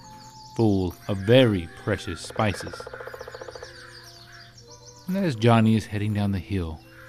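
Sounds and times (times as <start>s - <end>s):
soft birdsong with chirping and rising whistles: 0.0s - 7.0s
speech: 0.6s - 3.2s, 5.1s - 6.9s.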